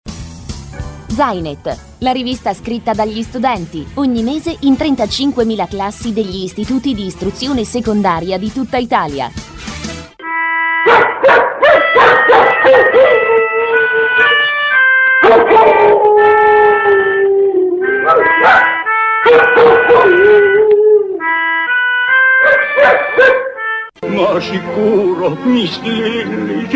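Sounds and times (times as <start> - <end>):
speech: 1.2 - 9.6, 24.3 - 26.7
dog whining and howling: 10.2 - 21.5, 22.1 - 23.7
dog barking in loud bursts: 10.8 - 14.4, 15.2 - 17.2, 17.9 - 20.6, 22.4 - 23.7.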